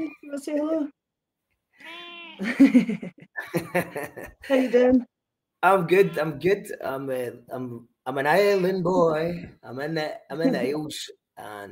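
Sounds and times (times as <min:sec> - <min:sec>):
speech: 0:00.0 - 0:01.0, 0:01.8 - 0:11.7
cat meowing: 0:01.8 - 0:02.5
laughter: 0:02.4 - 0:04.8.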